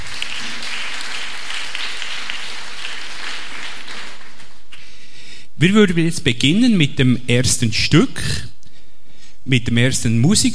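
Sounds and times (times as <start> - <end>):
audience applause: 0.0 - 4.6
speech: 5.6 - 8.5, 9.5 - 10.5.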